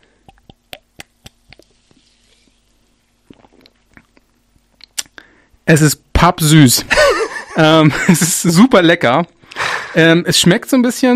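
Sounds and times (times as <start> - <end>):
wet clicks and mouth smacks tasting fizzy orange soda: 0.2 - 2.0, 3.2 - 5.2
speech: 5.7 - 9.4, 10.0 - 11.1.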